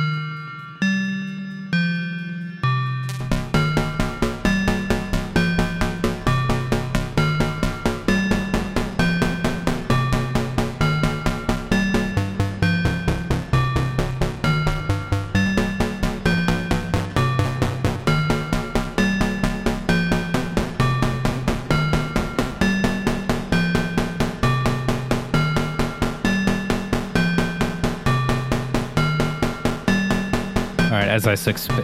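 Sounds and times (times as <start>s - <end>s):
ring-modulated synth playing metallic bell-like notes: 0.0s - 31.8s
speech: 31.2s - 31.8s.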